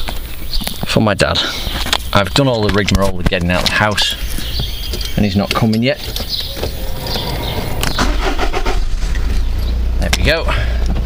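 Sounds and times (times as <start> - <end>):
speech: 1.0 - 4.3, 5.2 - 6.5, 10.0 - 10.7
diesel car engine cranking and starting then idling: 6.4 - 11.0.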